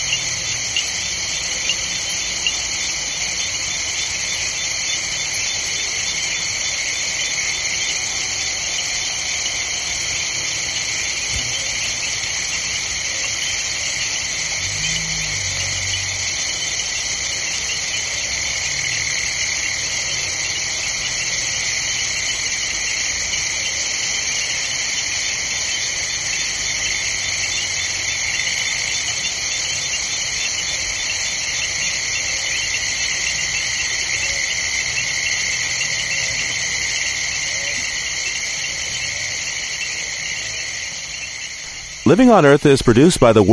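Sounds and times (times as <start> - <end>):
night chorus of insects and frogs: 0.0 - 43.5
speech: 42.1 - 43.5.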